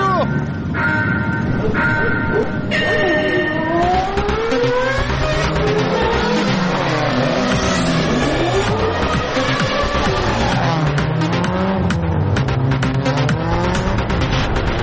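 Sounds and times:
tire-squeal-like whine: 0.2 - 11.5
engine revving at full throttle: 0.2 - 14.8.

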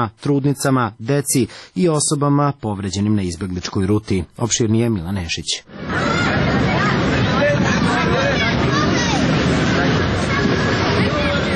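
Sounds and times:
speech: 0.0 - 7.3
crowd of refugees murmuring in a park near a bus station: 5.7 - 11.5
low traffic rumble near a bus station: 5.7 - 11.5.

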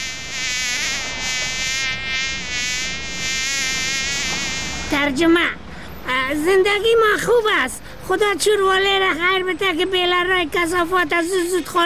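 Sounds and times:
fly buzzing: 0.0 - 5.0
speech: 5.0 - 11.8.

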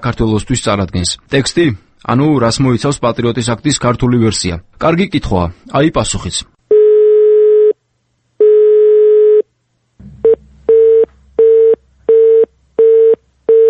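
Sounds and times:
speech: 0.0 - 6.6
telephone ringing tones from an unanswered call: 6.7 - 7.7, 8.4 - 9.4, 10.8 - 13.6
low hum: 9.8 - 13.6
telephone busy signal beeps: 11.5 - 13.6.

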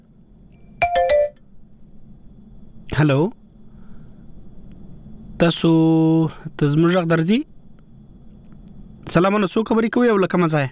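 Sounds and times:
faint low background: 0.0 - 10.7
telephone ringing with an incoming call, bright electronic chimes: 0.8 - 1.4
speech: 3.0 - 3.4, 5.4 - 7.5, 9.1 - 10.7.

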